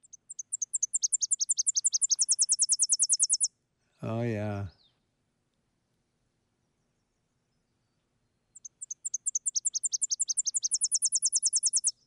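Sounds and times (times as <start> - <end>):
Tennessee warbler singing: 0.0 - 3.5, 7.0 - 12.0
speech: 4.0 - 4.8.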